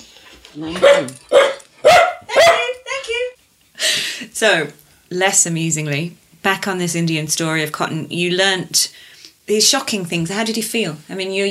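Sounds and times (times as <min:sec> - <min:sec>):
speech: 0:00.5 - 0:01.4, 0:04.4 - 0:11.5
dog barking: 0:00.7 - 0:02.8.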